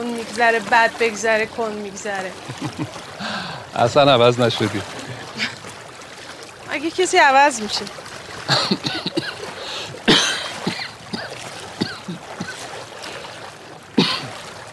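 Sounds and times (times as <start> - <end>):
water from three converging qanats rushing and splashing: 0.0 - 14.7
speech: 0.4 - 5.5, 6.8 - 8.7
laughter: 2.4 - 3.6, 8.5 - 9.9
person coughing or clearing throat: 8.5 - 12.7, 14.0 - 14.4.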